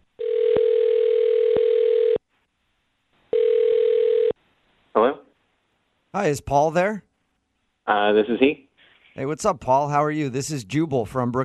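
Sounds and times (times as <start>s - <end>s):
long electronic telephone ringback tones: 0.2s - 2.2s, 3.3s - 4.3s
speech: 6.2s - 7.1s, 7.9s - 11.4s.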